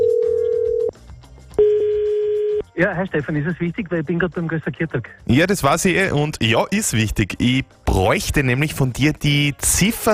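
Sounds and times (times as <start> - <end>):
outgoing phone call ringback tone: 0.0 - 0.9, 1.6 - 2.6
speech: 2.8 - 10.1.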